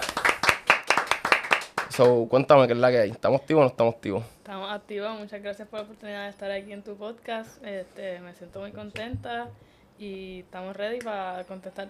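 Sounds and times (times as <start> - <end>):
applause welcoming a guest: 0.0 - 2.2
speech: 2.0 - 11.8.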